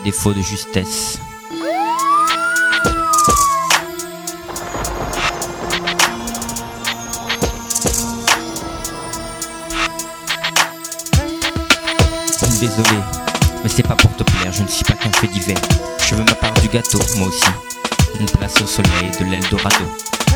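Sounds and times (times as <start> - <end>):
speech: 0.1 - 1.7, 12.6 - 20.3
police siren wailing: 1.5 - 5.2
busy loud music with sharp percussive hits: 2.0 - 20.3.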